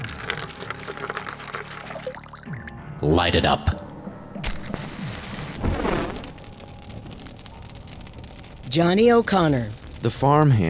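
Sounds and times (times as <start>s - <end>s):
coal oil pouring from a container: 0.0s - 2.5s
speech: 3.0s - 3.8s, 8.7s - 10.6s.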